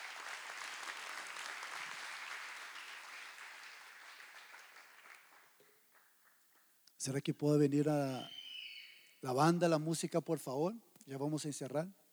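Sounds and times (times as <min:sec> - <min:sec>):
audience applauding: 0:00.0 - 0:06.7
speech: 0:07.0 - 0:08.4, 0:09.2 - 0:12.0.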